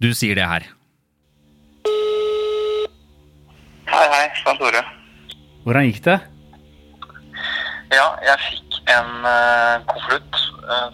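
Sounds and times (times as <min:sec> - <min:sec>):
speech: 0:00.0 - 0:00.8, 0:04.0 - 0:05.0, 0:05.6 - 0:06.3, 0:07.9 - 0:10.9
ringing tone of an outgoing telephone call: 0:01.8 - 0:02.9.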